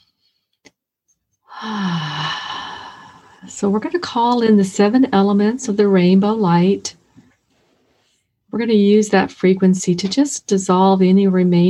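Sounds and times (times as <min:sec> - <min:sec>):
deep breath in during a guided meditation: 0:01.5 - 0:03.5
speech: 0:01.6 - 0:01.9, 0:03.5 - 0:07.0, 0:08.6 - 0:11.6.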